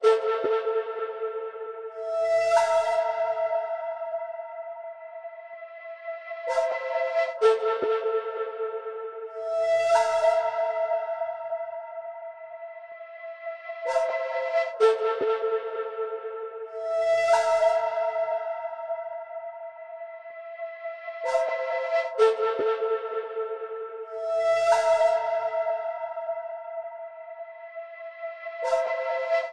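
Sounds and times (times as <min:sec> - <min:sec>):
flute melody loop in A minor at 130 BPM: 0:00.0 - 0:29.5.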